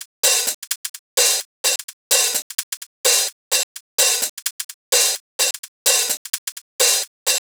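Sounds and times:
house music hi-hat loop: 0.0 - 7.4.

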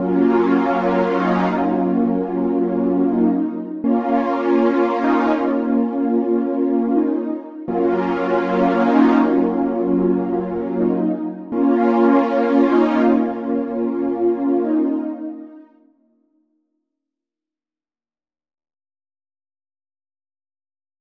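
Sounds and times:
synth pad melody loop in A sharp minor: 0.0 - 15.6.

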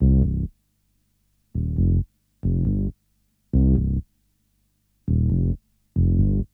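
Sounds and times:
bass melody loop in C minor at 136 BPM: 0.0 - 0.5, 1.6 - 2.9, 3.6 - 4.0, 5.1 - 6.5.

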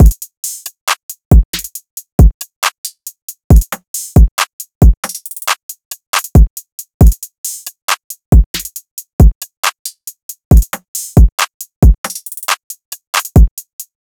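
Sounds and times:
drum loop: 0.0 - 13.9.

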